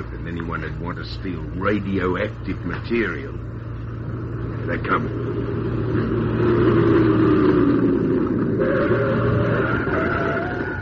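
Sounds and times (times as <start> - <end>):
speech: 0.0 - 3.6, 4.7 - 6.0
car engine revving on a road: 2.7 - 10.7.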